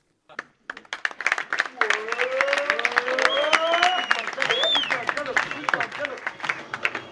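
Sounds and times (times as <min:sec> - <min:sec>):
packed theatre audience applause at a stand-up comedy play: 0:00.3 - 0:07.1
scattered vocal whoops from theatre audience: 0:01.7 - 0:05.9.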